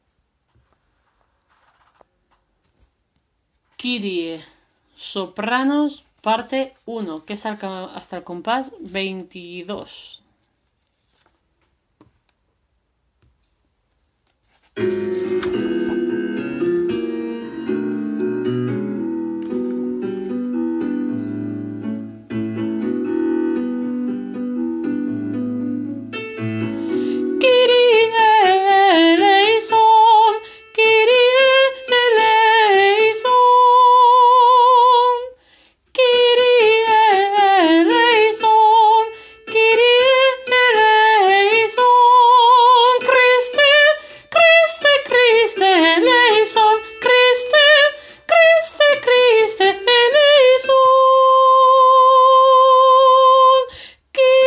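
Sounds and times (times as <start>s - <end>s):
soprano singing: 14.8s - 54.4s.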